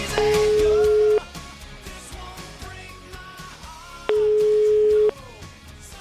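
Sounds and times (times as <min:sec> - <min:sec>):
telephone ringback tones while placing a call: 0:00.2 - 0:01.3, 0:04.1 - 0:05.2.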